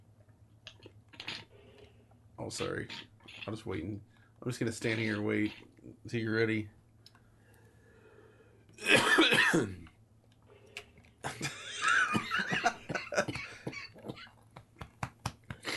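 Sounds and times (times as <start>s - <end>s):
speech: 2.4s - 6.8s, 9.5s - 9.8s
person clearing throat and hacking: 8.8s - 9.8s, 12.2s - 14.3s
person coughing up mucus: 8.8s - 9.8s, 11.3s - 14.3s.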